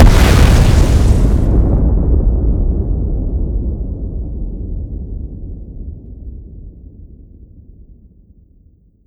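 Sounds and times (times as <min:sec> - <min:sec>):
bomb exploding: 0:00.0 - 0:03.7.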